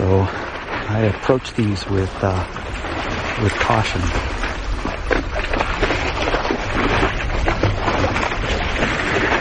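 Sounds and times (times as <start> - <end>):
constant rumble of wind: 0.0 - 9.4
water lapping and sloshing beneath an iceberg overhang: 0.0 - 9.4
speech: 0.3 - 4.5.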